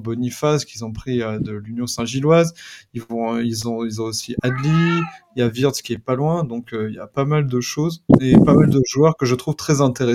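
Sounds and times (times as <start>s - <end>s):
speech: 0.0s - 10.1s
cat meowing: 4.4s - 5.4s.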